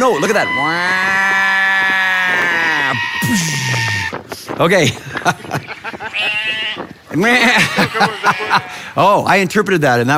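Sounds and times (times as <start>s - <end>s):
speech: 0.0s - 1.2s, 4.6s - 10.1s
sheep bleating: 0.0s - 4.2s, 6.0s - 8.9s
murmuring sounds: 0.0s - 4.4s, 5.1s - 9.0s
laughter: 4.8s - 9.0s.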